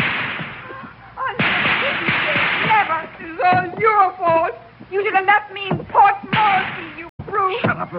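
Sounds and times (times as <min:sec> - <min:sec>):
dense hissing battle noise: 0:00.0 - 0:03.5
sharp gunshots: 0:00.0 - 0:03.7, 0:06.3 - 0:07.1
speech: 0:04.9 - 0:07.9.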